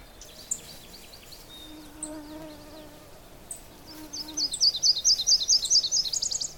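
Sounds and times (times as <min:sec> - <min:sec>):
low insect-like buzz: 0:00.0 - 0:04.7
Nashville warbler singing rapid high chirps in a bog: 0:00.0 - 0:06.5
scattered birdsong in a bog: 0:00.0 - 0:06.5.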